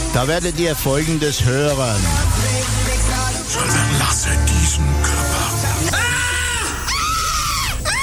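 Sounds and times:
speech: 0.2s - 5.4s
women screaming for joy: 5.9s - 8.0s.

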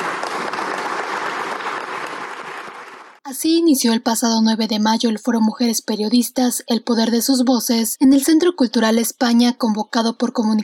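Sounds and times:
audience applause at a women journalists' forum in a cultural centre: 0.0s - 3.2s
speech: 3.3s - 10.6s.

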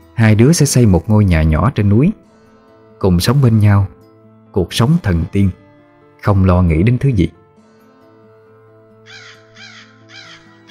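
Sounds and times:
speech: 0.2s - 2.3s, 3.0s - 5.6s, 6.2s - 7.4s
crow cawing from a treetop: 9.0s - 10.6s.

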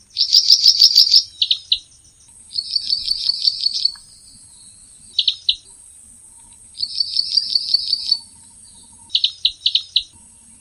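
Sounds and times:
bird trilling and chirping: 0.0s - 1.8s, 2.5s - 5.7s, 6.8s - 10.2s
steady high-pitched hiss: 0.0s - 10.5s.

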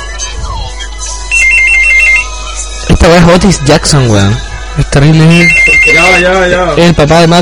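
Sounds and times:
telephone with an electronic ringtone beeping: 1.3s - 2.5s, 5.2s - 6.4s
speech: 3.0s - 7.4s.

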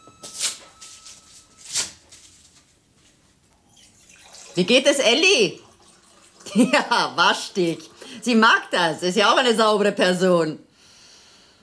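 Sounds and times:
small handwritten greeting card being torn up: 1.6s - 2.4s
speech: 4.6s - 5.6s, 6.5s - 10.6s.

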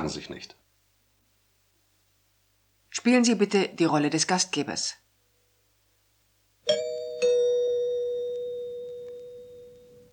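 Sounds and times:
speech: 0.1s - 0.7s, 3.0s - 5.0s
doorbell ringing with two chime notes: 6.7s - 10.1s.

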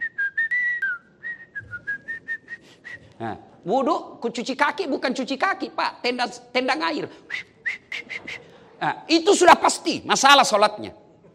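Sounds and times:
person whistling while performing Islamic ablutions: 0.0s - 3.2s, 7.3s - 8.5s
speech: 3.2s - 7.5s, 8.8s - 11.0s.

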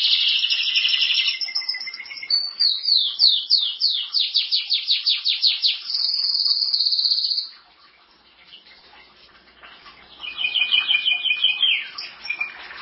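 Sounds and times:
canary song: 0.0s - 12.8s
faint background hiss: 0.0s - 12.8s.

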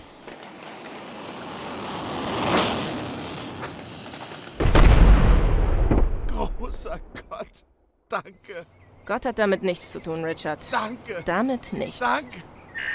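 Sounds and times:
air strike explosion in a war audio drama: 0.4s - 7.1s
speech: 8.2s - 12.9s.

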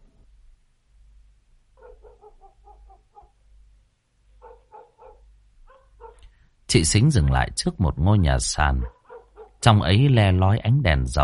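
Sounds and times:
dogs barking in a village at night near the Vietnam–Laos border: 1.8s - 3.4s, 4.4s - 6.2s, 8.8s - 9.6s
speech: 6.7s - 9.0s, 9.6s - 11.2s.

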